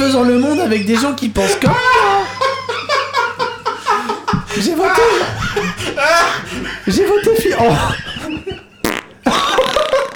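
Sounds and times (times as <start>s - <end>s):
speech: 0.0s - 2.0s, 4.6s - 8.0s
laughter: 0.0s - 10.1s
loud raspy sputtering fart sound effect: 8.8s - 10.1s.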